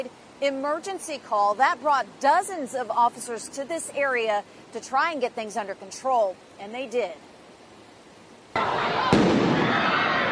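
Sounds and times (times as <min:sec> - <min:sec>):
speech: 0:00.0 - 0:07.3
noisy surroundings in the street: 0:00.0 - 0:10.2
fireworks blast outdoors in the street: 0:08.5 - 0:10.2
sustained crackling roar of fireworks bursts: 0:08.6 - 0:10.2
sharp fireworks bang: 0:08.7 - 0:10.0.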